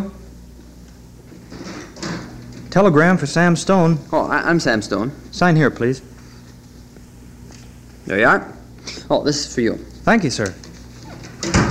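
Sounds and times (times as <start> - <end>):
front door being pulled open with scraping rustling noise: 1.3 - 2.8, 10.7 - 11.6
speech: 2.8 - 6.1, 8.1 - 10.6.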